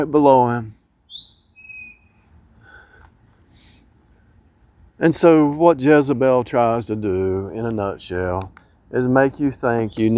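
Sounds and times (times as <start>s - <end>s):
speech: 0.0s - 0.8s, 5.0s - 10.1s
bird calling from directly above: 1.0s - 3.9s.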